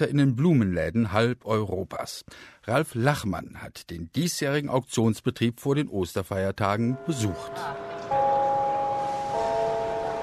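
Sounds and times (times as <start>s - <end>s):
speech: 0.0s - 7.8s
electronic-sounding gong chime opening a flower auction: 6.9s - 10.2s.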